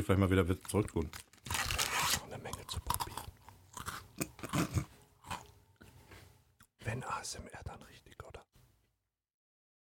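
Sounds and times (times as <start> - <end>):
speech: 0.0 - 1.3
crunchy chewing of a chocolate-coated snack: 0.6 - 5.9.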